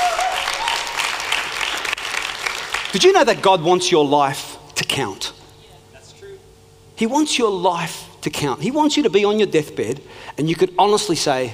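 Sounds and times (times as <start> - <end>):
audience applause during a religious sermon: 0.0 - 3.1
speech: 2.9 - 5.4, 7.0 - 11.5.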